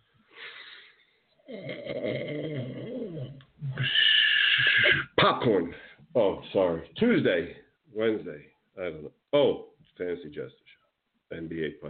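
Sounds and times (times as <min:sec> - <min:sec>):
person yawning: 0:01.5 - 0:05.2
speech: 0:05.4 - 0:11.8.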